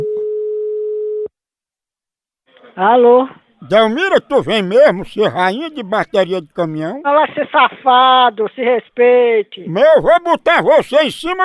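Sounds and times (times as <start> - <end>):
telephone ringing tone of an outgoing call: 0.0 - 1.3
speech: 2.8 - 11.4.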